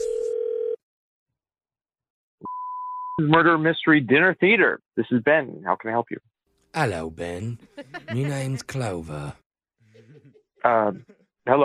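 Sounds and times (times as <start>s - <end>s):
electronic telephone ringback tone: 0.0s - 0.8s
speech: 3.2s - 9.4s, 10.6s - 11.6s
laughter: 7.3s - 11.3s.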